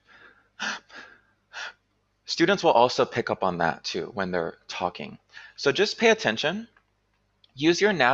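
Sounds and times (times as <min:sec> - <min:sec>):
sharp gasp: 0:00.0 - 0:01.7, 0:05.3 - 0:05.6
soft breathy exhale: 0:00.0 - 0:01.7, 0:05.3 - 0:05.6
speech: 0:02.4 - 0:06.8, 0:07.6 - 0:08.1.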